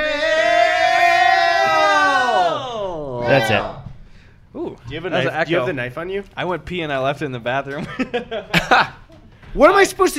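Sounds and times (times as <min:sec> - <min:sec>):
several voices screaming one long drawn-out word together: 0:00.0 - 0:03.8
speech: 0:03.4 - 0:03.8, 0:04.6 - 0:10.1
laughter: 0:07.7 - 0:09.2.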